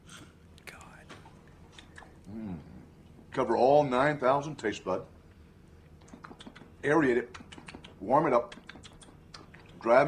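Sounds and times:
mouth smacking while eating vanilla ice cream off an upside-down spoon: 0:01.7 - 0:02.8, 0:05.9 - 0:09.9
speech: 0:03.4 - 0:05.2, 0:06.8 - 0:07.4, 0:08.0 - 0:08.6, 0:09.8 - 0:10.0.

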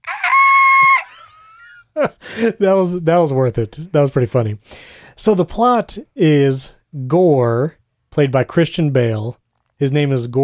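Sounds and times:
person imitating a screaming goat: 0:00.0 - 0:01.2
speech: 0:02.4 - 0:10.4.

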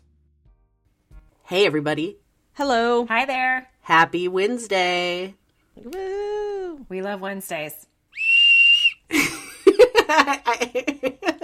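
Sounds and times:
speech: 0:01.5 - 0:06.2, 0:06.9 - 0:08.3, 0:10.1 - 0:11.4
whistle blast: 0:08.2 - 0:09.1.

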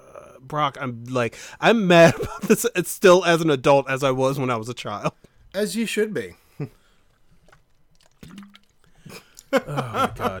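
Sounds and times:
speech: 0:00.5 - 0:06.8, 0:09.5 - 0:10.3
liquid gulps: 0:06.8 - 0:09.5
sipping from a water bottle: 0:06.9 - 0:09.5
laughter: 0:09.1 - 0:10.3.

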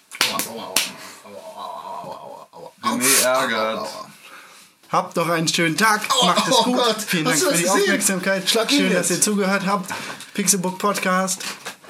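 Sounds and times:
sharp loud slaps: 0:00.0 - 0:01.0
speech: 0:00.5 - 0:04.1, 0:04.9 - 0:11.7
laughter: 0:06.1 - 0:08.2.

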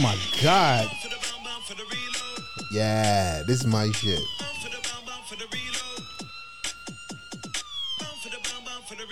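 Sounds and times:
speech: 0:00.0 - 0:01.1, 0:02.7 - 0:04.4
fast punchy electronic dance beat: 0:00.0 - 0:01.4, 0:02.1 - 0:07.5
rising and falling siren wails: 0:00.0 - 0:09.0.

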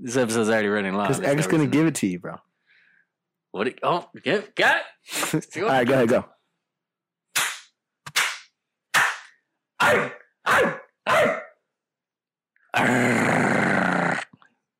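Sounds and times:
speech: 0:00.0 - 0:02.5, 0:03.6 - 0:06.4, 0:09.9 - 0:11.4, 0:12.7 - 0:13.6
voice imitating dog barks: 0:09.8 - 0:11.6
voice imitating deep rough growl: 0:12.7 - 0:14.4.

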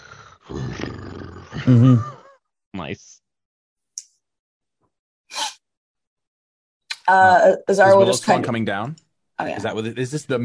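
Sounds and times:
voice imitating a loud amplified snoring purr: 0:00.0 - 0:02.2
speech: 0:01.6 - 0:02.1, 0:02.9 - 0:03.2, 0:07.1 - 0:10.4.

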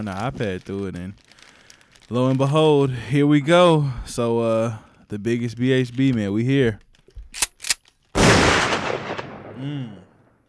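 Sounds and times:
speech: 0:00.0 - 0:01.4, 0:02.1 - 0:07.5, 0:09.6 - 0:10.1
sharp gunshot cracks: 0:08.2 - 0:10.3.

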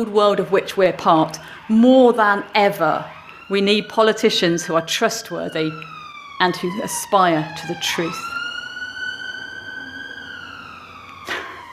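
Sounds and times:
speech: 0:00.0 - 0:08.3
ambulance siren wailing outside: 0:00.0 - 0:11.7.

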